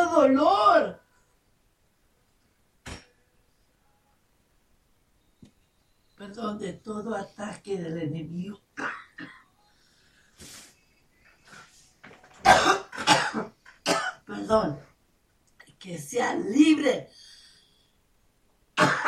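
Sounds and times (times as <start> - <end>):
speech: 0.2 - 1.0, 6.3 - 9.4, 14.3 - 14.9, 15.8 - 17.2
person coughing harshly: 8.8 - 9.5, 12.4 - 14.2, 18.8 - 19.0.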